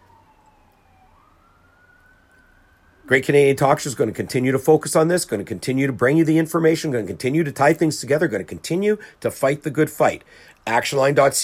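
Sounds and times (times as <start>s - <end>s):
emergency vehicle siren wailing: 0.0s - 9.1s
low continuous rumble of traffic: 0.0s - 11.4s
speech: 3.1s - 11.4s.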